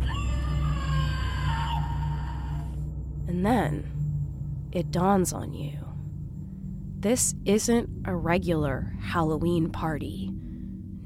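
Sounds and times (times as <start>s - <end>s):
recorded scream sound effect triggered by stepping on mat: 0.0s - 2.8s
speech: 3.3s - 4.0s, 4.7s - 5.9s, 7.0s - 10.4s.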